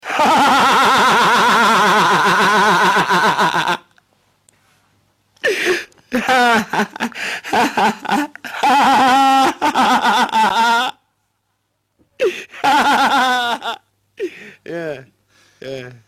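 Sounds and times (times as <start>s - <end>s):
manifold laughter: 0.0s - 3.8s, 6.1s - 10.9s, 12.6s - 13.8s.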